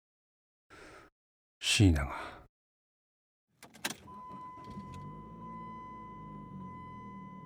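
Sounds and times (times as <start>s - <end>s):
speech: 1.7s - 2.3s
car engine cranking and starting then idling: 3.6s - 7.4s.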